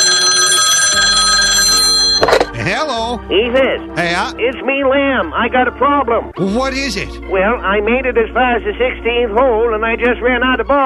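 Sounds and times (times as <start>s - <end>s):
cell phone ringing with an electronic trill: 0.0s - 2.6s
speech: 3.1s - 10.8s.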